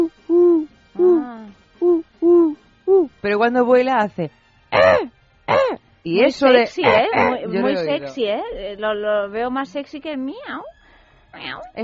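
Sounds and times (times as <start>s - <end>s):
person imitating perched wood pigeon cooing: 0.0s - 3.1s, 6.8s - 7.4s
speech: 3.2s - 5.0s, 6.0s - 10.7s, 11.3s - 11.8s.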